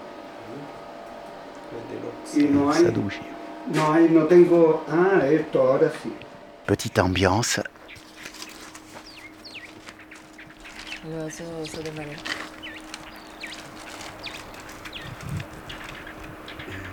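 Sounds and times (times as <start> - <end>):
steady low hum: 0.0 - 16.9
speech: 1.7 - 7.7, 11.1 - 12.4
small birds chirping in the Elqui Valley Chile: 7.1 - 16.9.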